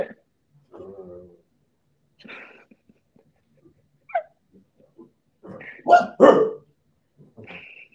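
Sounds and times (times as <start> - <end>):
dog yelp: 5.8 - 6.6
playing female dog barking: 5.8 - 6.7.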